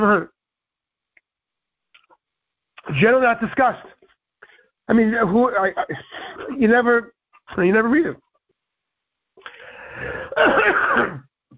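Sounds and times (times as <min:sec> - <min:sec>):
speech: 0:00.0 - 0:00.3, 0:02.9 - 0:04.0, 0:04.9 - 0:08.2, 0:09.4 - 0:11.3
person clearing phlegm from the throat: 0:10.2 - 0:11.3.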